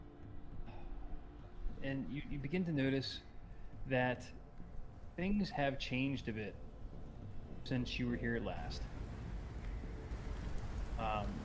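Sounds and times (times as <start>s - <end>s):
low rumble: 0.0s - 11.4s
speech: 1.8s - 3.3s, 3.9s - 4.4s, 5.2s - 6.6s, 7.6s - 9.0s, 11.0s - 11.4s
steady rain pattering on the ground: 4.8s - 11.4s.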